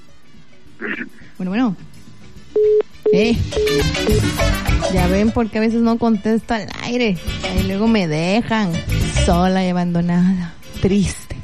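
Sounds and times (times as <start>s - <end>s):
speech: 0.8s - 11.2s
telephone line tone on a call-in phone line: 2.6s - 4.3s.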